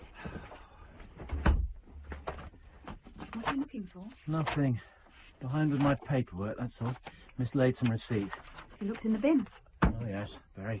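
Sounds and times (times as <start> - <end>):
door shutting with a low thud: 1.2 - 1.8
speech: 3.4 - 10.7.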